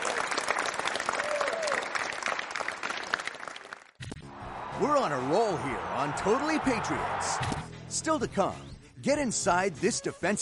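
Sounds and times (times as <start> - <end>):
crowd applauding: 0.0 - 7.5
speech: 4.8 - 10.4.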